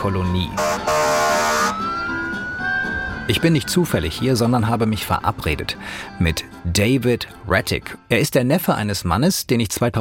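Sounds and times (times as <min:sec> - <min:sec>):
speech: 0:00.0 - 0:01.0, 0:03.3 - 0:09.9
loud siren wailing with rising pitch at a parade: 0:00.0 - 0:04.8
broadband street noise: 0:00.0 - 0:08.0.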